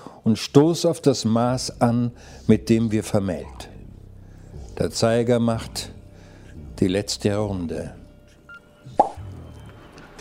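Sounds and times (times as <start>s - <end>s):
speech: 0.2s - 3.7s, 4.8s - 6.0s, 6.8s - 8.0s
champagne cork popping: 9.0s - 9.2s.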